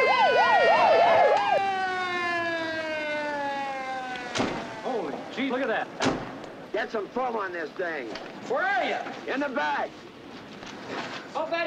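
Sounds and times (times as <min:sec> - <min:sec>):
police car siren as the car speeds round a corner: 0:00.0 - 0:05.4
speech: 0:05.5 - 0:06.2, 0:06.8 - 0:10.1, 0:10.9 - 0:11.6.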